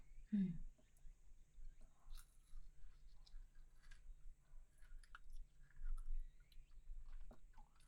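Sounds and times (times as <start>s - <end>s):
chewing a food with ice cream inside: 1.8s - 7.8s.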